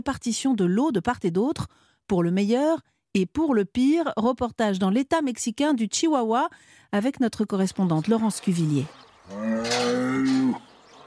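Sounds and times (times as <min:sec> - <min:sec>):
speech: 0:00.0 - 0:10.6
cattle mooing at feeding time on a ranch: 0:09.3 - 0:10.8.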